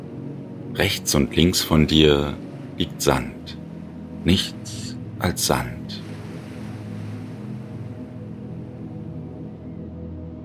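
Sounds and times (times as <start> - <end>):
speech: 0.7 - 3.6, 4.2 - 6.0
ocean surf on a sandy beach in fog over a bay: 6.0 - 8.1.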